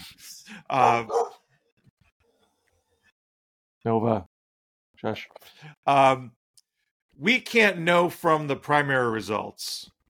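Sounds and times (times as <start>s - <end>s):
speech: 0.5s - 1.2s, 3.8s - 4.3s, 5.0s - 6.4s, 7.2s - 10.0s
dog barking at another dog: 0.8s - 1.5s.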